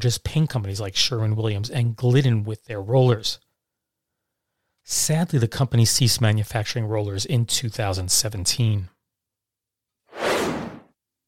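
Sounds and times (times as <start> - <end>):
speech: 0.0 - 3.5, 4.8 - 9.0
airy whoosh sound effect: 10.1 - 10.9.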